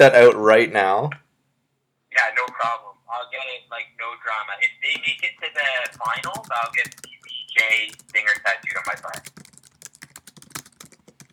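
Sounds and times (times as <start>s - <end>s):
speech: 0.0s - 1.2s, 2.2s - 9.5s
typing on a computer keyboard: 5.0s - 11.3s.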